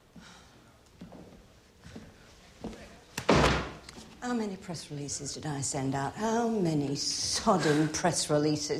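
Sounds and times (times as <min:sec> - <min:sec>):
soft thuds like footsteps: 0:00.2 - 0:04.3
speech: 0:04.2 - 0:08.7.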